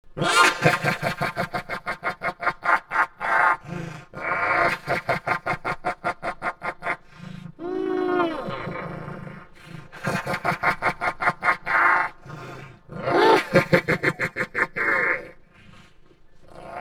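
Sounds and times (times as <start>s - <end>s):
crazy laughter through a tube: 0.2s - 7.6s, 8.3s - 15.9s.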